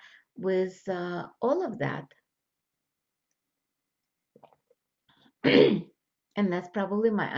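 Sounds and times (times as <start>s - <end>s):
speech: 0.4s - 2.2s, 5.4s - 7.3s
person clearing throat with something caught in it: 5.4s - 5.9s.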